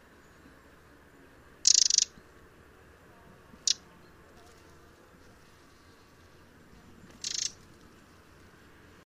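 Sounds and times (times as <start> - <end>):
faint background noise: 0.0 - 9.0
Eurasian wren harsh high rattling calls: 1.6 - 2.2, 3.6 - 3.8, 7.1 - 7.8.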